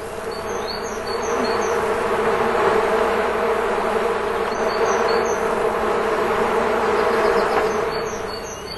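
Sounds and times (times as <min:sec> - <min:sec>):
honeybee swarm humming on a clear sunny warm day: 0:00.0 - 0:08.7.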